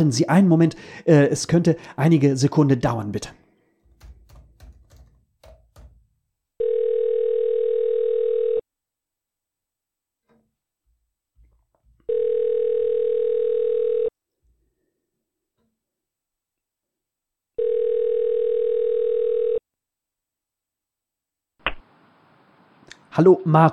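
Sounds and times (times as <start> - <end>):
speech: 0.0 - 3.4, 23.2 - 23.7
telephone ringback tone while placing a call: 6.6 - 8.6, 12.1 - 14.1, 17.6 - 19.6.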